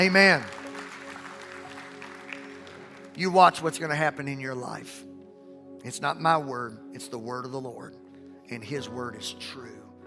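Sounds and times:
speech: 0:00.0 - 0:00.6, 0:03.2 - 0:05.1, 0:05.8 - 0:09.8
church audience clapping hands: 0:00.0 - 0:04.0.

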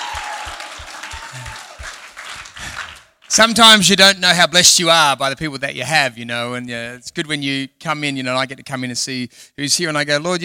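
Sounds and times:
audience applause: 0:00.0 - 0:03.3
speech: 0:03.3 - 0:10.4.

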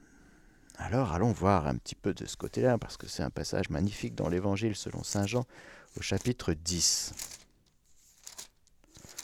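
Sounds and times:
speech: 0:00.9 - 0:07.4
thin Bible paper pages being turned: 0:03.8 - 0:09.2.

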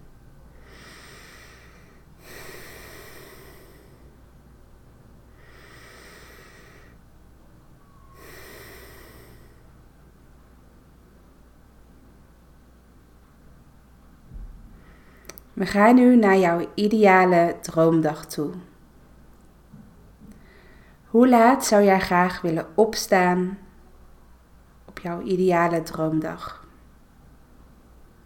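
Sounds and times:
low steady hiss: 0:00.0 - 0:28.2
deep breathing in and out: 0:00.5 - 0:04.3, 0:05.3 - 0:07.1, 0:07.8 - 0:09.8, 0:14.6 - 0:15.4, 0:20.3 - 0:21.1
speech: 0:15.6 - 0:18.7, 0:21.2 - 0:23.6, 0:25.0 - 0:26.6.

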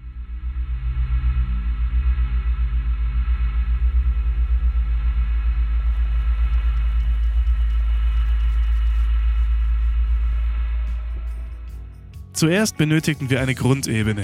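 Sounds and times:
low sustained software-synthesized sci-fi drone with pulsing low-end throb: 0:00.0 - 0:14.2
faint glittery crackles and static: 0:03.2 - 0:11.7
speech: 0:12.4 - 0:14.2.

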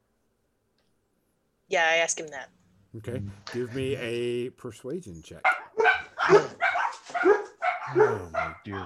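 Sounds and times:
speech: 0:01.7 - 0:05.6, 0:06.3 - 0:06.6, 0:07.2 - 0:08.8
high-pitched dog barks: 0:05.4 - 0:08.8.

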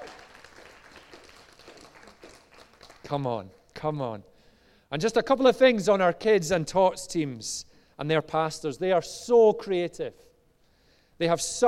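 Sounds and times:
room full of people applauding: 0:00.0 - 0:03.9
speech: 0:03.1 - 0:04.3, 0:04.9 - 0:10.3, 0:11.2 - 0:11.6.

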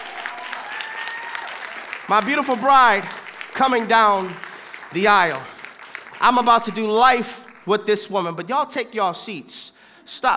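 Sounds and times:
crowd applauding: 0:00.0 - 0:07.8
speech: 0:02.1 - 0:05.6, 0:06.2 - 0:10.3.

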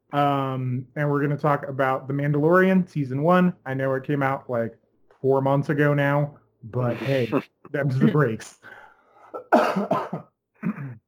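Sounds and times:
speech: 0:00.1 - 0:08.8, 0:09.5 - 0:10.9
person coughing from seasonal allergy: 0:09.3 - 0:11.0.

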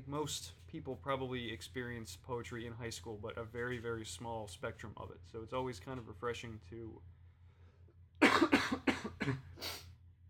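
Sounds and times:
speech: 0:00.1 - 0:07.2, 0:09.2 - 0:09.8
harsh coughing fit: 0:08.2 - 0:09.8.

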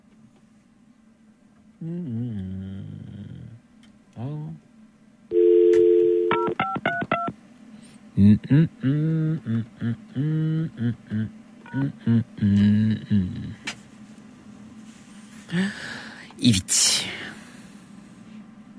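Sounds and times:
speech: 0:01.8 - 0:02.2, 0:08.2 - 0:13.6, 0:15.5 - 0:16.9
steady telephone tone: 0:05.3 - 0:06.8
paired telephone keypad beeps as a number is dialed: 0:05.3 - 0:07.3.

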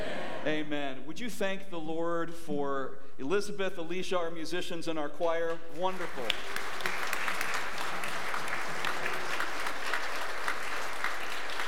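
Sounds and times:
speech: 0:00.4 - 0:07.0
room full of people applauding: 0:06.0 - 0:11.6.

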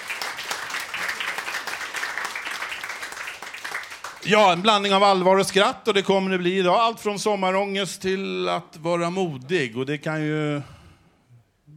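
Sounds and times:
audience applause: 0:00.0 - 0:04.7
speech: 0:04.2 - 0:10.8.

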